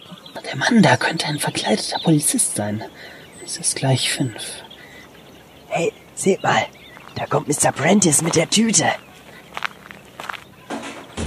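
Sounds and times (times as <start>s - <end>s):
speech: 0.5s - 4.6s, 5.7s - 9.1s
man's footsteps walking away through a park: 5.0s - 11.2s.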